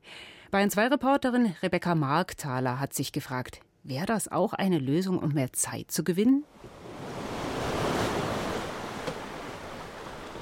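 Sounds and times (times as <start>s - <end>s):
speech: 0.5s - 6.8s
ocean waves around a sailboat at sea: 6.4s - 10.4s
splash or knock: 7.9s - 10.4s.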